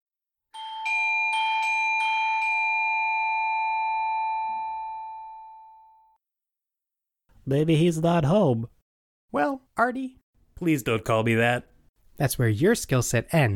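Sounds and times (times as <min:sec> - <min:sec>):
doorbell chiming: 0:00.6 - 0:06.2
speech: 0:07.4 - 0:13.5.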